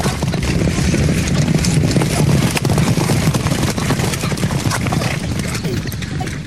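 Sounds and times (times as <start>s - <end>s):
horses galloping past with hooves pounding: 0.0s - 6.4s.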